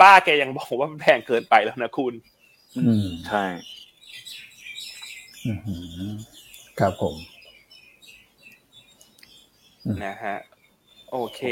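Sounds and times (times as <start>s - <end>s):
flock of birds chirping at a home in the morning: 0.0s - 11.5s
speech: 0.1s - 3.8s, 5.4s - 7.3s, 9.8s - 10.5s, 11.1s - 11.5s.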